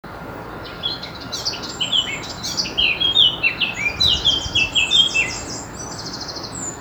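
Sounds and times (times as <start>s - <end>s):
faint steady hum: 0.1s - 6.7s
Eurasian blackcap singing: 0.6s - 6.7s.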